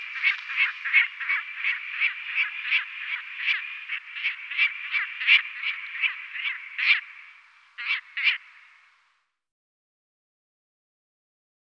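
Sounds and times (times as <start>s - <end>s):
Lanner falcon hoarse chattering kek calls: 0.0s - 8.9s.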